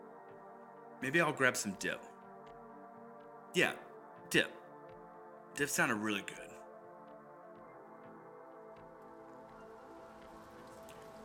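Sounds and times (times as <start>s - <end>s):
speech: 1.0s - 2.1s, 3.6s - 4.6s, 5.6s - 6.5s
steady quiet rain pattering: 8.8s - 11.2s.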